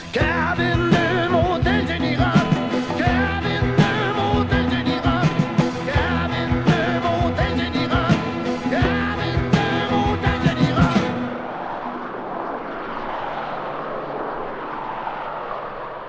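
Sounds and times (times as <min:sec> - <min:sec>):
heavy car engines roaring: 0:00.0 - 0:12.4
passing traffic rumble: 0:00.0 - 0:16.0.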